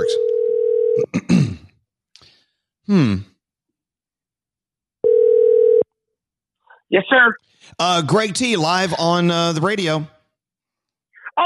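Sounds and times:
electronic telephone dial tone of outgoing call: 0:00.0 - 0:01.0, 0:05.0 - 0:05.8
speech: 0:02.9 - 0:03.3, 0:06.9 - 0:10.2.

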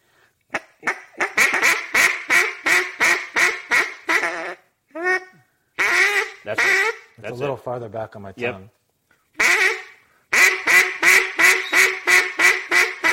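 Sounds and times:
duck call imitating hen mallard quacks: 0:00.5 - 0:07.2, 0:09.4 - 0:13.1
speech: 0:06.5 - 0:08.8.

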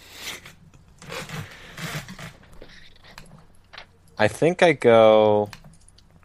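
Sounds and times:
speech: 0:04.2 - 0:05.6
typing on a keyboard: 0:05.4 - 0:06.2.

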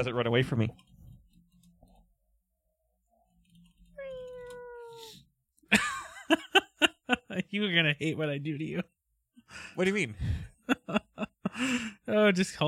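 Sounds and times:
speech: 0:00.0 - 0:00.9, 0:07.4 - 0:12.6
cat meowing: 0:04.0 - 0:05.2.

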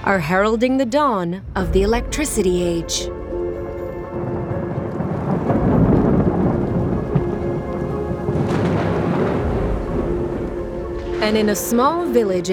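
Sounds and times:
speech: 0:00.0 - 0:03.2, 0:11.2 - 0:12.5
low rolling rumble of thunder: 0:01.4 - 0:12.5
steady rain pouring over a small village in the Austro-Hungarian Empire: 0:03.1 - 0:12.5.

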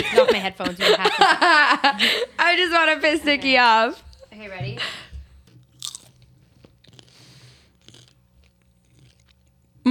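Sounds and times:
laughter: 0:00.0 - 0:02.4
speech: 0:00.0 - 0:05.1
cheddar popcorn crunching and chewing: 0:05.5 - 0:09.8.

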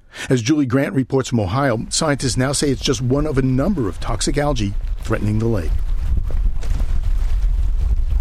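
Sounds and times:
speech: 0:00.3 - 0:05.8
strong wind gusts on a lake shoreline: 0:01.6 - 0:08.1.

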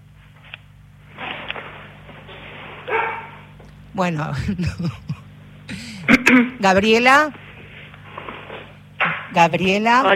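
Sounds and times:
steady low electrical hum: 0:00.0 - 0:10.1
dogs barking: 0:02.9 - 0:03.5
speech: 0:04.0 - 0:07.4, 0:09.3 - 0:10.1
laughter: 0:04.3 - 0:06.5.

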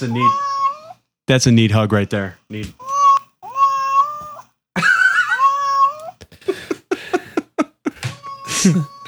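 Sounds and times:
speech: 0:00.0 - 0:00.6, 0:01.3 - 0:02.8, 0:08.6 - 0:08.9
recorded cat meows played from a phone app: 0:00.0 - 0:01.1, 0:02.8 - 0:04.6, 0:05.2 - 0:06.2, 0:08.0 - 0:09.0
laughter: 0:04.8 - 0:05.4, 0:06.3 - 0:09.0.

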